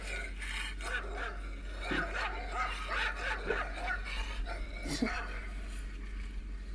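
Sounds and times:
steady low hum: 0.0 - 6.7
dog barking and yipping played through a small handheld device speaker: 0.7 - 5.6.

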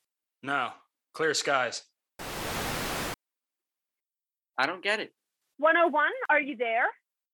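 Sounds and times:
speech: 0.4 - 1.9, 4.6 - 7.0
static interference on a phone line: 2.2 - 3.2.

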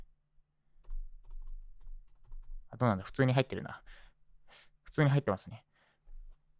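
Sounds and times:
computer keyboard typing: 0.8 - 2.6
speech: 2.8 - 4.0, 4.9 - 5.7.

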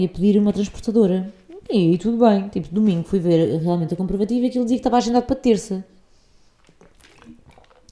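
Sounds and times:
speech: 0.0 - 5.9
person sipping water: 6.2 - 7.8
person swallowing: 6.6 - 7.8
wet mouth clicks: 6.6 - 7.8.

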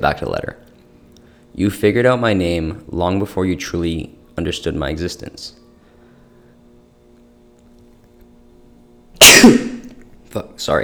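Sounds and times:
speech: 0.0 - 0.7, 1.6 - 5.6, 9.2 - 9.6, 10.3 - 10.8
person sneezing: 9.2 - 10.0.

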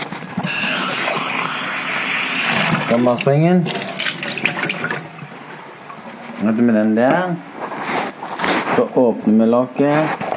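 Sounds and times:
running kitchen tap water rinsing something: 0.3 - 6.7
speech: 2.9 - 3.8, 6.4 - 7.5, 8.8 - 10.2.

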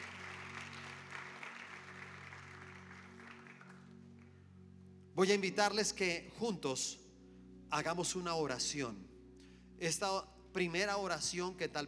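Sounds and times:
audience applause welcoming people before a prayer: 0.0 - 4.3
speech: 5.2 - 7.0, 7.7 - 9.1, 9.8 - 11.8.

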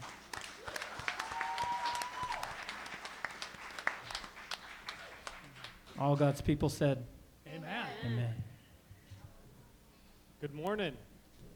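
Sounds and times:
small church audience clapping during worship: 0.0 - 6.4
people whooping in a small church audience: 0.6 - 2.9, 4.9 - 5.3
speech: 6.0 - 7.2, 8.0 - 8.5, 10.4 - 11.1.

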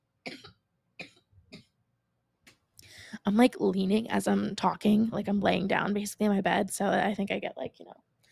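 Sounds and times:
dry coughs: 0.3 - 1.7
speech: 3.3 - 8.1.

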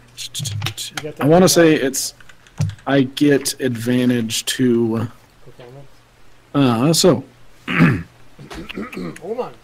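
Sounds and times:
speech: 0.2 - 2.2, 2.9 - 5.2, 6.6 - 8.0
person clearing throat: 7.7 - 9.2.

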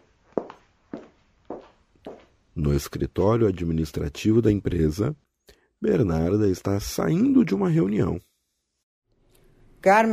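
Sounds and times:
footsteps walking from the kitchen on a hard floor: 0.0 - 2.4
speech: 2.6 - 5.2, 5.8 - 8.3, 9.8 - 10.1.

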